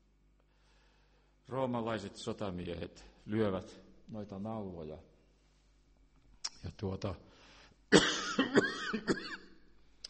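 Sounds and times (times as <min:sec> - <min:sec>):
speech: 0:01.5 - 0:05.1, 0:06.6 - 0:07.3, 0:07.9 - 0:09.4
older man having a coughing fit: 0:07.9 - 0:09.6.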